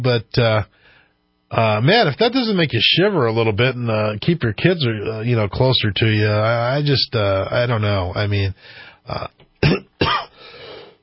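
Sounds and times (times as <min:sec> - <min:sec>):
speech: 0:00.0 - 0:00.8, 0:01.5 - 0:09.9
person clearing throat because of a tickle: 0:09.2 - 0:10.4
rough exhale: 0:10.3 - 0:11.0.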